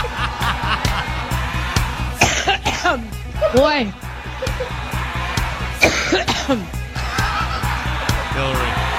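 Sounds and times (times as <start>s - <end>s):
laughter: 0.0s - 2.2s, 3.5s - 8.9s
coughing fit of harsh rapid coughs in a played recording: 2.2s - 3.0s, 5.8s - 6.6s
speech: 2.9s - 4.1s, 5.8s - 6.8s, 8.4s - 8.8s.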